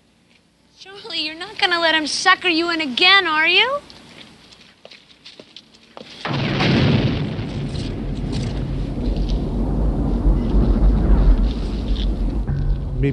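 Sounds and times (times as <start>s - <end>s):
speech: 0.8s - 4.0s
explosion rumble: 6.3s - 13.1s.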